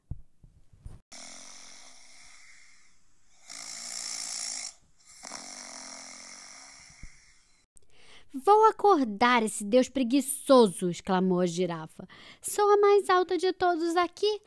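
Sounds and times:
loud rattling snoring: 0:01.1 - 0:07.7
speech: 0:08.3 - 0:14.4.

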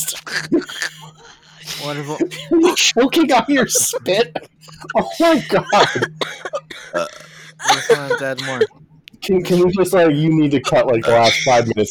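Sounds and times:
loud croaky burp: 0:00.0 - 0:01.2, 0:04.3 - 0:08.7, 0:10.6 - 0:11.7
faint steady hum: 0:00.0 - 0:11.8
laughter: 0:00.0 - 0:11.8
speech: 0:00.3 - 0:11.8.

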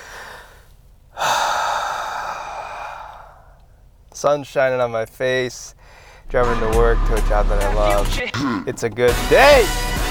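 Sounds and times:
deep breath: 0:00.0 - 0:03.8, 0:05.8 - 0:06.3
speech: 0:04.2 - 0:09.9.

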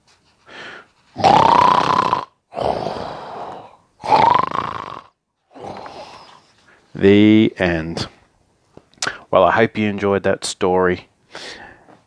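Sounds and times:
person imitating loud snoring: 0:01.2 - 0:06.4
speech: 0:07.0 - 0:08.2, 0:09.6 - 0:11.1.

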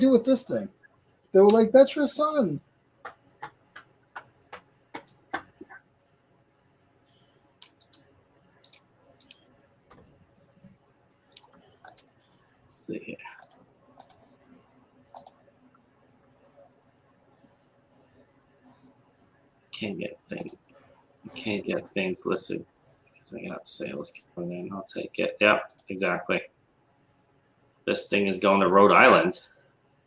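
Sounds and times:
speech: 0:00.0 - 0:03.2, 0:19.8 - 0:20.6, 0:21.4 - 0:22.7, 0:23.3 - 0:26.5, 0:27.9 - 0:29.5
keyboard typing while cutting and pasting text: 0:03.4 - 0:05.8, 0:07.6 - 0:10.1, 0:11.4 - 0:12.2, 0:13.4 - 0:14.2, 0:15.1 - 0:15.4, 0:20.3 - 0:20.6, 0:25.6 - 0:26.0
computer mouse clicking while cutting and pasting text: 0:05.0 - 0:05.2, 0:07.6 - 0:10.1, 0:11.4 - 0:12.2, 0:13.4 - 0:14.2, 0:15.2 - 0:15.4, 0:20.4 - 0:20.6, 0:25.7 - 0:25.9.

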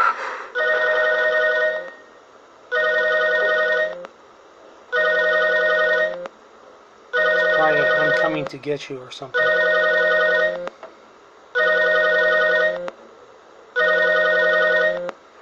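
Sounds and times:
phone ringing with an electronic trill: 0:00.6 - 0:02.1, 0:02.7 - 0:04.0, 0:04.9 - 0:06.2, 0:07.1 - 0:08.4, 0:09.4 - 0:10.7, 0:11.6 - 0:12.9, 0:13.8 - 0:15.1
speech: 0:08.4 - 0:09.8.

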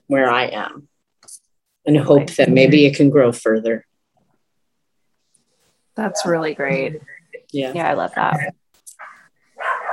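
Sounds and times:
speech: 0:00.1 - 0:03.9, 0:06.0 - 0:08.6
dogs barking: 0:09.0 - 0:09.9.

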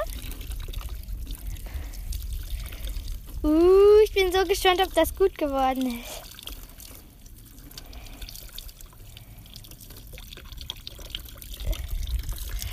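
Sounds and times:
tap water running while rinsing dyed fabric: 0:00.0 - 0:12.7
speech: 0:03.4 - 0:06.1.

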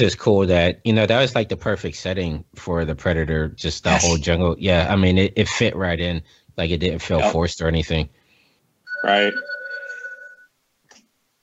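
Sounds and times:
speech: 0:00.0 - 0:08.2, 0:09.0 - 0:09.6
text message notification chime: 0:08.9 - 0:10.4.

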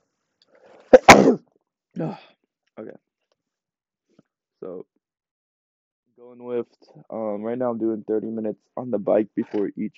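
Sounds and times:
person sneezing: 0:00.8 - 0:01.4
speech: 0:02.0 - 0:02.3, 0:07.1 - 0:09.9.

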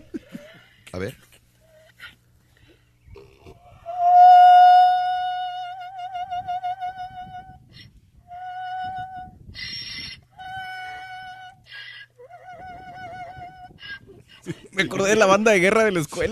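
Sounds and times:
speech: 0:00.9 - 0:01.3, 0:15.0 - 0:16.3
donkey braying: 0:03.1 - 0:14.3
laughter: 0:14.4 - 0:15.3.

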